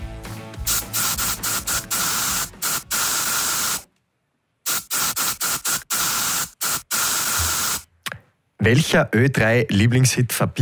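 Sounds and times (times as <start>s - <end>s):
aerosol deodorant spray can hissing in bursts: 0.6s - 3.9s, 4.7s - 7.9s
speech: 8.6s - 10.5s.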